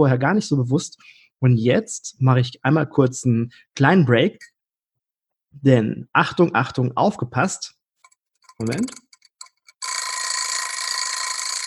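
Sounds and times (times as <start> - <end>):
speech: 0.0 - 4.5, 5.5 - 7.8, 8.6 - 9.0
egg timer clicking: 8.0 - 11.6
egg timer ringing with a metallic bell rattle: 9.8 - 11.6.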